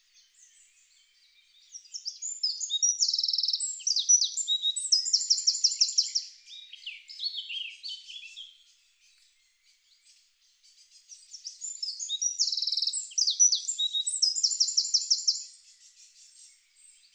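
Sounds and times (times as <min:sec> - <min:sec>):
Eurasian wren singing, Troglodytes troglodytes: 0:01.5 - 0:08.6, 0:10.7 - 0:17.1.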